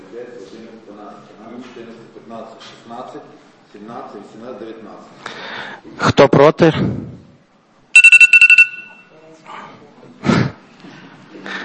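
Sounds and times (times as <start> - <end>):
speech: 1.0 - 7.2
telephone ringing with electronic trills during a committee vote: 8.0 - 9.0.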